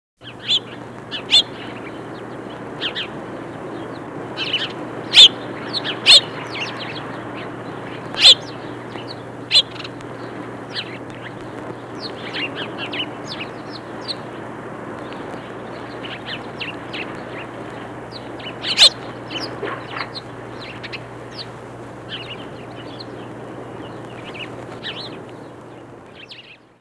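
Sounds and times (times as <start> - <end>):
sparrows: 0.2 - 26.7.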